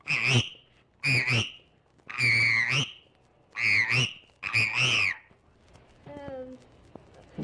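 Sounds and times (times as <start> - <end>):
frog croaking: 0.0 - 3.0, 3.6 - 5.3.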